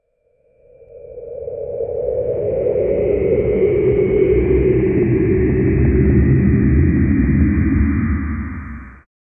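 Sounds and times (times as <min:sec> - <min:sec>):
demonic deep sound: 0:01.8 - 0:09.1.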